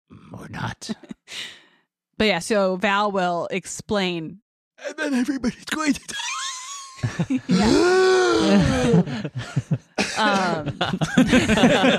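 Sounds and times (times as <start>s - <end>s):
speech: 0.5s - 1.6s, 2.2s - 6.4s, 7.0s - 11.9s
laughter: 4.9s - 11.9s
person coughing: 10.0s - 10.7s.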